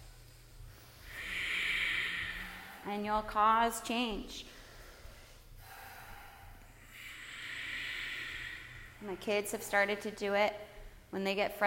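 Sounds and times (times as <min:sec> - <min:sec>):
slow deep breathing in and out through the nose: 0:00.7 - 0:03.4, 0:04.4 - 0:10.1
speech: 0:02.8 - 0:04.6, 0:09.0 - 0:11.6.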